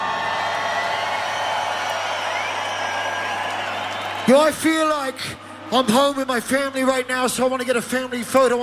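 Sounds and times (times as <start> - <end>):
large audience crowd cheering and whooping: 0.0 - 5.1
speech: 4.3 - 8.6.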